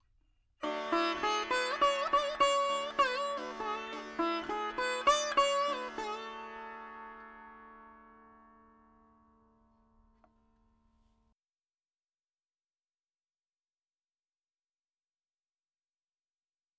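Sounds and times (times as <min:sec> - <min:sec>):
dry veena melody: 0:00.6 - 0:11.2.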